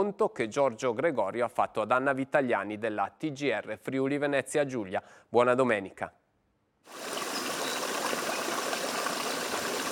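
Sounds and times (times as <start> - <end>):
speech: 0.0 - 6.2, 6.8 - 7.2
mountain stream in Val Rosandra, Friuli Venezia Giulia, Italy, rushing over rocks below cliffs: 6.9 - 9.9.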